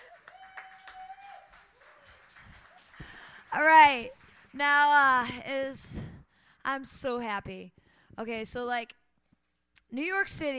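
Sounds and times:
small audience clapping quietly: 0:00.0 - 0:05.4
speech: 0:03.6 - 0:06.0, 0:06.6 - 0:09.0, 0:09.9 - 0:10.5.

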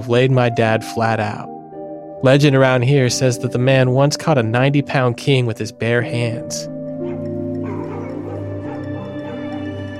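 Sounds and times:
speech: 0:00.0 - 0:01.6, 0:02.2 - 0:06.8
several dogs baying and yipping in chorus: 0:07.0 - 0:09.9.

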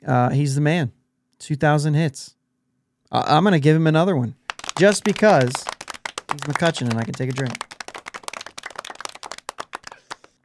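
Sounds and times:
speech: 0:00.0 - 0:02.4, 0:03.1 - 0:05.7, 0:06.3 - 0:07.7
applause: 0:04.4 - 0:10.4.

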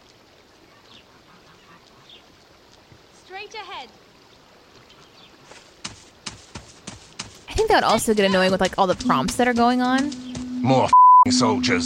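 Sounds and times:
goose honks: 0:00.7 - 0:02.3
speech: 0:03.4 - 0:04.0, 0:07.6 - 0:11.8.

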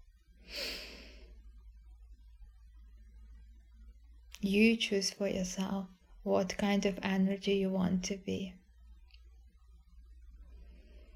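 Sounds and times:
low hum: 0:00.0 - 0:11.1
deep breath during a guided relaxation exercise: 0:00.4 - 0:01.6, 0:10.4 - 0:11.1
speech: 0:04.4 - 0:08.6.

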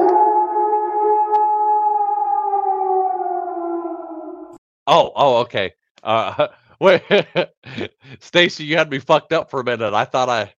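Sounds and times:
person imitating a wolf howl: 0:00.0 - 0:04.5
speech: 0:04.9 - 0:10.5.

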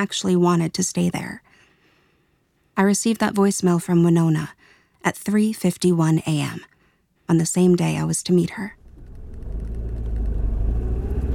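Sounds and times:
speech: 0:00.0 - 0:01.5, 0:02.8 - 0:06.7, 0:07.3 - 0:08.8
car engine rumbling as the car drives up to a park: 0:08.8 - 0:11.3.

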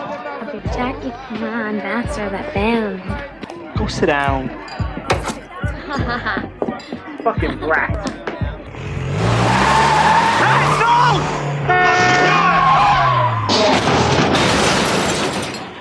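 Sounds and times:
speech: 0:00.5 - 0:04.9, 0:05.9 - 0:08.2
laughter: 0:05.5 - 0:07.8
car engine roaring in a played film scene: 0:08.6 - 0:15.7
tires screeching: 0:08.6 - 0:15.7
crunching scraping noise of wreck settling: 0:11.8 - 0:15.7.

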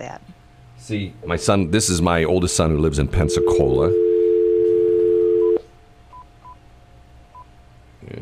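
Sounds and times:
speech: 0:00.0 - 0:04.1
phone dial tone: 0:03.2 - 0:05.6.

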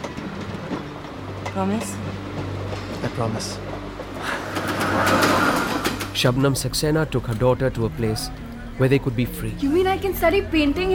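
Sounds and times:
train rolling along rails: 0:00.0 - 0:07.2
speech: 0:01.6 - 0:04.3, 0:06.2 - 0:10.9.

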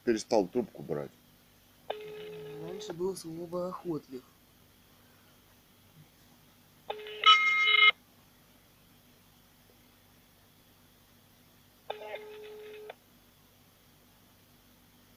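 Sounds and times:
speech: 0:00.1 - 0:01.2, 0:02.8 - 0:04.3
electronic telephone ringback tones: 0:01.9 - 0:02.9, 0:06.9 - 0:08.0, 0:11.9 - 0:12.9.

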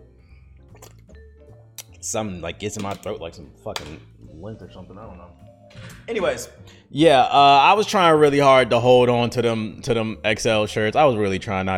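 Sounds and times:
person taking a swig of water with wet gulps: 0:00.7 - 0:01.1
speech: 0:02.0 - 0:11.7.

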